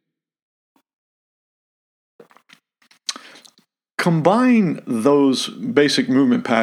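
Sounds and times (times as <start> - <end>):
slurping sip of coffee from a cup: 2.2 - 3.6
speech: 4.0 - 6.6.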